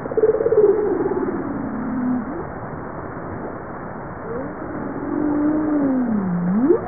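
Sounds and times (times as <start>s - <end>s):
Bowhead whale moans: 0.2s - 2.5s, 4.2s - 6.8s.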